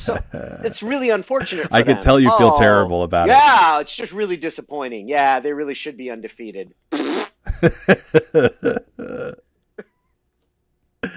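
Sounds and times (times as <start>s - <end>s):
speech: 0.0s - 7.0s, 7.6s - 9.4s
laughter: 1.4s - 2.6s, 7.5s - 9.3s
person making fart noise with the mouth: 6.9s - 7.4s, 8.7s - 9.5s.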